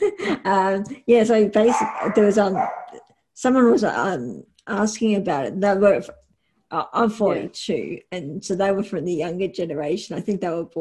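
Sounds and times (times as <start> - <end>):
speech: 0.2 - 2.8, 3.4 - 10.7
dog barking in the background: 1.7 - 3.0.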